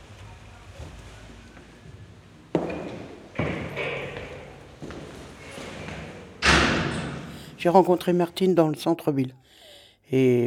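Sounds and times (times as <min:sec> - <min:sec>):
heavy thuds: 0:02.5 - 0:07.6
door opening: 0:02.5 - 0:07.8
speech: 0:07.6 - 0:10.4.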